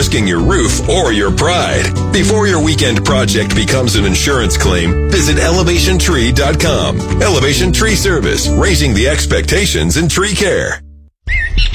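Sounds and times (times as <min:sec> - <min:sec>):
speech: 0:00.1 - 0:11.7
bird squawking call in spring in southern Ontario: 0:11.2 - 0:11.7.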